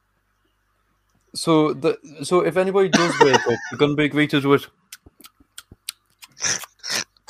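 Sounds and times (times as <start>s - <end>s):
speech: 1.3s - 4.8s
laughter: 2.9s - 4.0s
person imitating a cat eating a mouse with noisy chewing: 4.9s - 7.2s.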